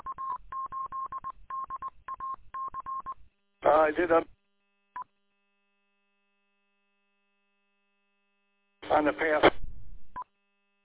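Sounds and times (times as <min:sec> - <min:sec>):
telephone dialing tones: 0:00.0 - 0:03.2
speech: 0:03.7 - 0:04.3.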